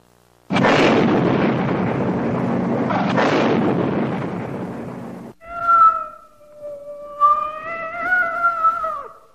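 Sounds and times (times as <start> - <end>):
large sealed cardboard box bursting into flames and exploding in a smoldering trash pit: 0.5 - 5.4
long anguished wavering cat yowl: 5.4 - 9.3.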